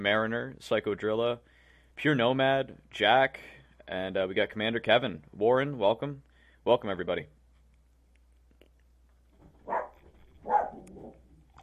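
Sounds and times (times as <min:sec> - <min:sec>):
speech: 0:00.0 - 0:07.4
dog barking: 0:09.6 - 0:11.2.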